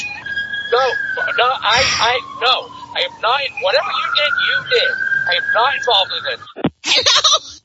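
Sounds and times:
approaching police car siren wailing: 0.0s - 6.6s
speech: 0.7s - 7.4s.

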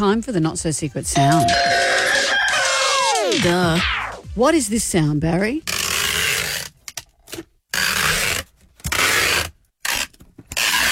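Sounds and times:
speech: 0.0s - 2.1s, 3.4s - 5.7s
packing tape torn off skin: 5.7s - 10.9s.

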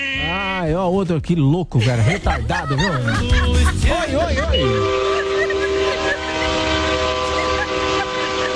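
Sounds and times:
rumbling road noise: 0.2s - 8.5s
speech: 0.7s - 5.2s
laughter: 1.8s - 8.5s
truck air horn honked by a truck driver: 4.5s - 8.5s.

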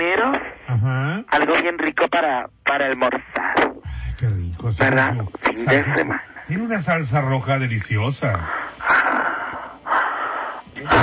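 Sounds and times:
speech: 0.2s - 9.1s
heavy wheezy panting of a person after jogging on a hot day: 8.4s - 11.0s.

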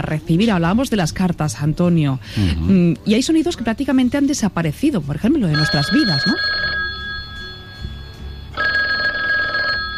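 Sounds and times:
speech: 0.0s - 6.7s
old landline telephone bell ringing with metallic trill: 5.6s - 9.9s.

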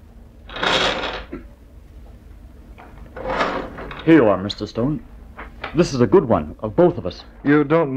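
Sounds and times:
drawer sliding open with a scraping rush: 3.2s - 4.2s
speech: 4.0s - 7.9s.

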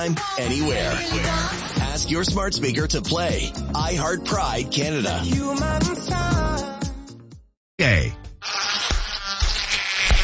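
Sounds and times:
speech: 0.0s - 6.4s, 7.8s - 8.2s
mosquito buzzing: 8.4s - 10.2s.

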